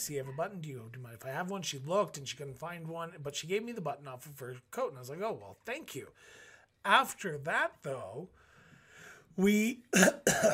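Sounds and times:
speech: 0:00.0 - 0:08.4, 0:09.4 - 0:10.5
throaty voiced sound: 0:09.9 - 0:10.5
person coughing: 0:10.0 - 0:10.5.

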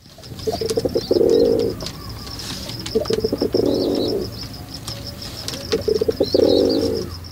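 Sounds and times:
rock pigeon giving rumbling coo phrases: 0:00.0 - 0:07.2
small birds chirping faintly: 0:00.0 - 0:07.2
rock pigeon harsh grunt: 0:00.4 - 0:04.4, 0:05.7 - 0:07.1.

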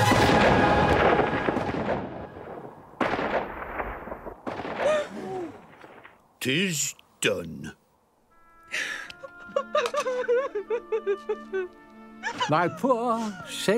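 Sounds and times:
gunshot echoing through a tiny town: 0:00.1 - 0:06.2
speech: 0:06.4 - 0:07.8, 0:08.7 - 0:09.0, 0:10.4 - 0:13.7
laughter: 0:08.8 - 0:13.5.

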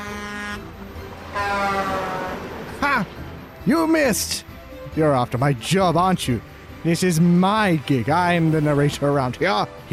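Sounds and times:
truck horn blasts: 0:00.0 - 0:03.0
speech: 0:03.0 - 0:09.9.

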